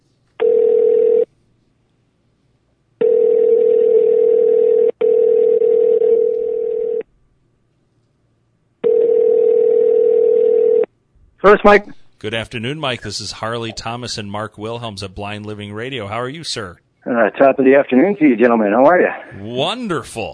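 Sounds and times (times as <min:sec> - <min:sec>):
telephone line buzzing tone: 0:00.4 - 0:01.3, 0:03.0 - 0:07.0, 0:08.8 - 0:10.9
speech: 0:11.5 - 0:20.3.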